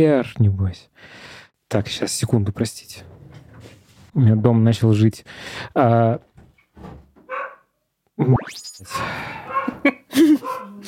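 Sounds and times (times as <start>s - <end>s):
speech: 0.0s - 3.2s, 4.2s - 7.0s, 8.2s - 10.8s
dog barking: 7.2s - 7.7s, 9.4s - 10.8s
dog yelping: 7.3s - 7.6s, 9.5s - 10.8s.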